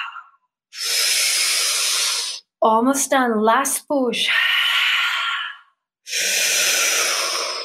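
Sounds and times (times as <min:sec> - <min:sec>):
forceful exhaling breaths during a breathing exercise: 0:00.0 - 0:02.5, 0:04.3 - 0:07.6
speech: 0:02.6 - 0:04.5.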